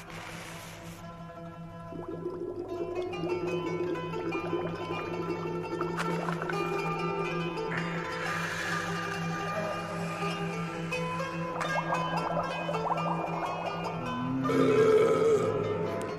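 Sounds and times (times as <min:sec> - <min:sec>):
droning musical tones: 0:01.0 - 0:16.1
water bubbling in hookahs and pipes: 0:01.3 - 0:16.1
long deep burp: 0:14.3 - 0:15.9.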